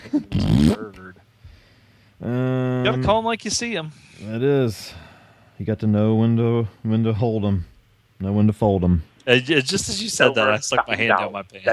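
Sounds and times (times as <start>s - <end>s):
speech: 0.0s - 1.1s, 2.2s - 5.0s, 5.6s - 11.7s
person blowing a raspberry with their mouth: 0.2s - 0.9s.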